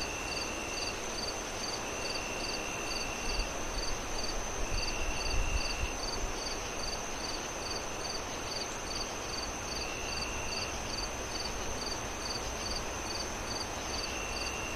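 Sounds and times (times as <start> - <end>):
crickets chirping on a windy night: 0.0 - 14.7
wind howling through trees: 0.0 - 14.7.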